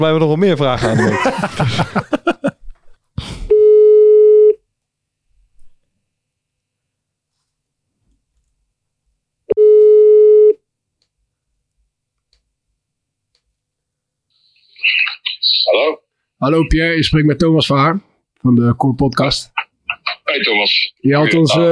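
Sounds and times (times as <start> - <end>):
speech: 0.0 - 2.2, 16.4 - 19.6, 20.3 - 21.6
laughter: 0.8 - 2.7
phone line ringback tone: 3.5 - 4.6, 9.5 - 10.6.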